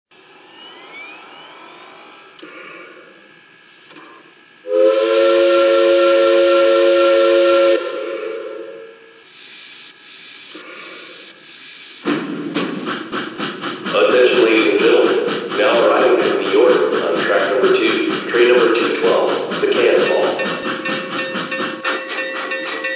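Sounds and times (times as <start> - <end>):
trains: 0.1 - 9.2, 10.5 - 11.4, 12.0 - 22.9.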